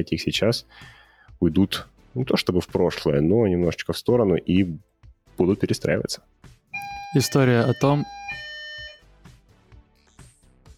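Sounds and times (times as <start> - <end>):
speech: 0.0 - 6.3, 7.1 - 8.4
phone ringing with electronic tone: 6.8 - 9.0.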